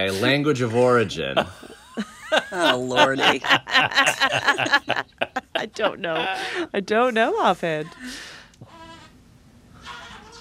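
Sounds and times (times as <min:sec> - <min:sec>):
laughter: 0:00.0 - 0:06.8
speech: 0:00.0 - 0:08.4
steady low hum: 0:00.0 - 0:10.3
baby making wavering goat-like bleats: 0:08.6 - 0:09.1, 0:09.8 - 0:10.3.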